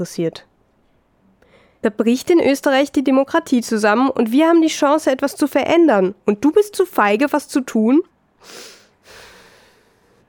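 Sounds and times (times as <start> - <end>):
speech: 0.0 - 0.5, 1.8 - 8.8
woman struggling to breathe with heavy labored breaths: 8.4 - 10.2.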